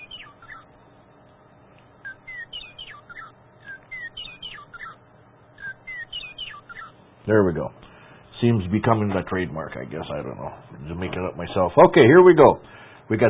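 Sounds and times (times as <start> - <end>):
bird chirping and singing: 0.0 - 0.8, 2.1 - 5.0, 5.6 - 7.0
low hum: 0.0 - 13.2
speech: 7.3 - 7.8, 8.4 - 13.2.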